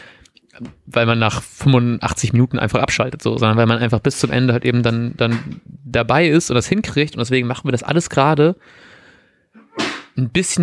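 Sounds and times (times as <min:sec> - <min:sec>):
quick inhaled breath: 0:00.0 - 0:00.3, 0:08.6 - 0:09.6
speech: 0:00.6 - 0:08.9, 0:10.2 - 0:10.6
single sharp sneeze: 0:09.6 - 0:10.2.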